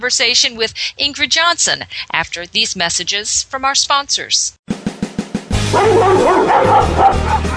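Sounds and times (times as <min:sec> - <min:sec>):
speech: 0:00.0 - 0:04.6, 0:05.7 - 0:07.5
several dogs barking and yelping: 0:05.7 - 0:07.5.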